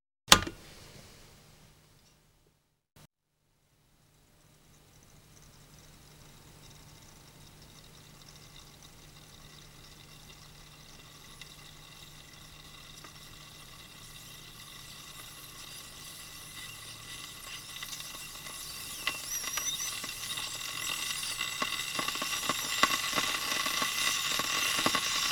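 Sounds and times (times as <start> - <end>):
household electric kettle: 3.9 - 25.3.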